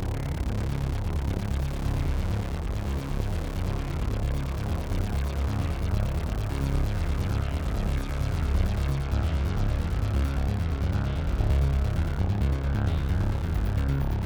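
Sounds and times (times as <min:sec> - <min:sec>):
synthesizer sequence: 0:00.1 - 0:14.2.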